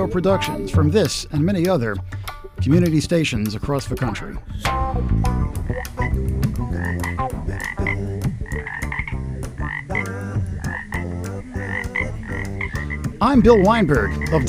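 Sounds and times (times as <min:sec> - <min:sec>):
speech: 0:00.0 - 0:07.2, 0:13.2 - 0:14.4
dense chorus of frogs croaking: 0:05.6 - 0:14.4.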